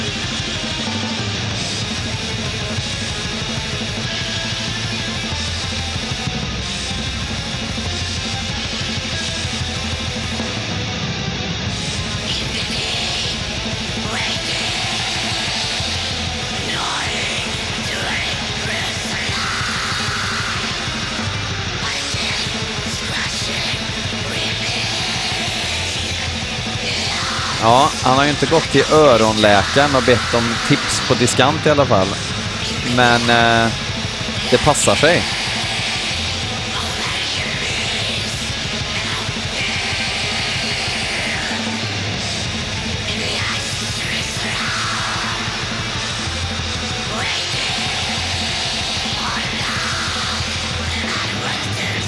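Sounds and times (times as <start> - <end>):
dense noisy music: 0.0 - 52.0
harsh distorted screaming: 11.8 - 52.0
speech: 27.6 - 32.3, 32.9 - 33.8, 34.5 - 35.4.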